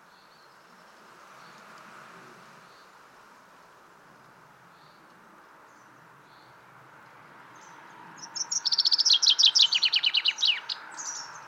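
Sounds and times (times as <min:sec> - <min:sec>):
common chaffinch Fringilla coelebs song: 0:00.0 - 0:01.8, 0:02.6 - 0:03.0, 0:04.6 - 0:06.8, 0:07.4 - 0:11.4.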